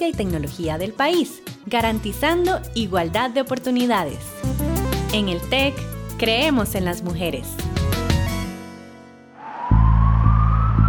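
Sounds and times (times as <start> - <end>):
speech: 0.0 - 7.7
ambulance siren: 9.4 - 10.8
loud steady low rumble: 9.4 - 10.8.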